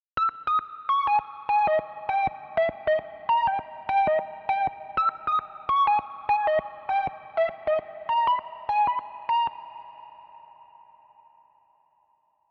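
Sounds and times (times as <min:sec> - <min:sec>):
lo-fi plucked melody: 0:00.2 - 0:10.1.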